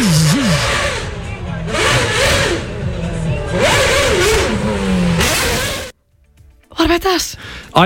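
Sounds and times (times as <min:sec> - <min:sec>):
Formula One race car engine revving: 0:00.0 - 0:06.0
speech: 0:07.0 - 0:07.8.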